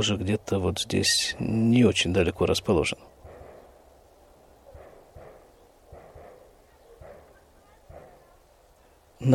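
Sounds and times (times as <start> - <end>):
speech: 0.0 - 3.2
steady outdoor hum: 0.0 - 9.3
faint distant gunshots from a shooting range: 3.2 - 3.8, 4.7 - 8.3.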